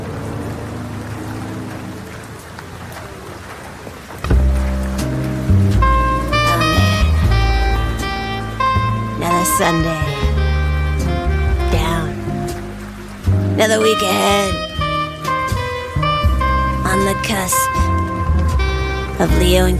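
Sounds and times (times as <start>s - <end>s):
steady rain falling: 0.0s - 19.7s
music with sustained tones: 4.3s - 19.7s
speech: 13.7s - 14.6s, 17.2s - 17.8s, 19.2s - 19.7s.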